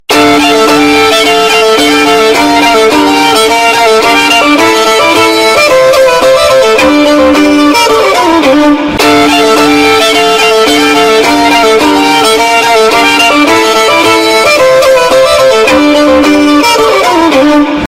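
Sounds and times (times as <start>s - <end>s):
loud distorted violin: 0.0s - 17.8s.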